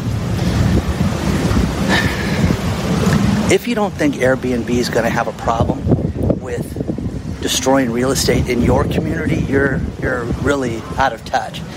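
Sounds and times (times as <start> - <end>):
gusting wind buffeting the microphone: 0.0 - 11.7
ocean surf roaring at the shore: 0.0 - 11.7
speech: 3.5 - 5.9, 7.4 - 11.7.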